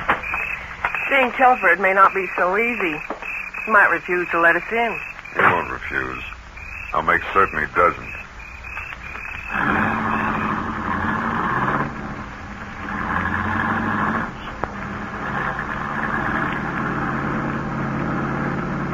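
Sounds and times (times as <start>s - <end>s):
car engine humming while driving: 0.0s - 18.9s
speech: 1.1s - 6.3s, 6.9s - 8.2s.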